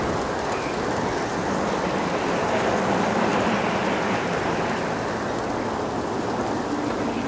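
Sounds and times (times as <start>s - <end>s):
snowstorm: 0.0s - 7.2s.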